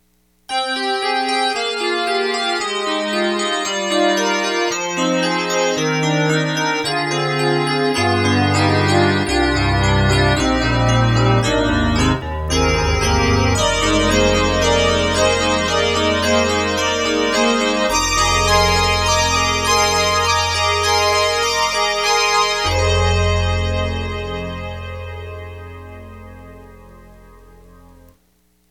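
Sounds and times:
synthesizer piano: 0.5s - 28.2s.

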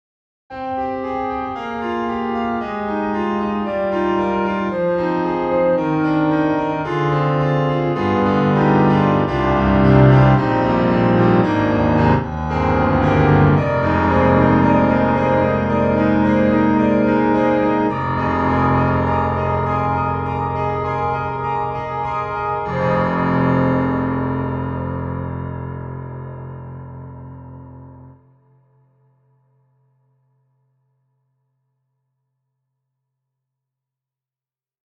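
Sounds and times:
micropiano playing: 0.5s - 28.4s.

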